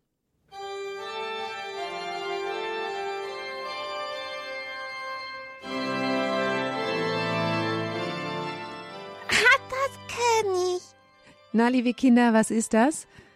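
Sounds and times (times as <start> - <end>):
church organ playing sustained chords: 0.5 - 10.1
speech: 11.6 - 13.2.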